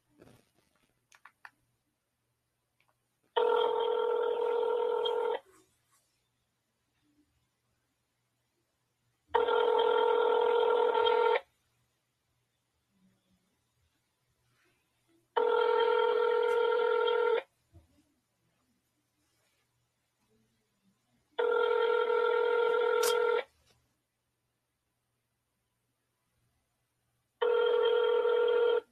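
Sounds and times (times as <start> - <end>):
phone call to a movie listings line ringing: 3.4 - 5.4, 9.3 - 11.5, 15.4 - 17.5, 21.4 - 23.5, 27.4 - 28.8.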